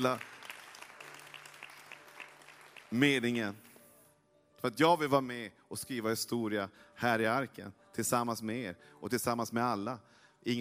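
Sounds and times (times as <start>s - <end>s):
speech: 0.0s - 0.3s, 2.9s - 3.7s, 4.6s - 10.5s
small group clapping: 0.0s - 3.2s.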